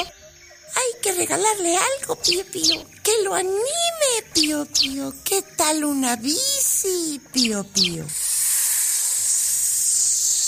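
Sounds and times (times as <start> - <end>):
speech: 1.0 - 8.2
snake hissing: 6.4 - 10.4.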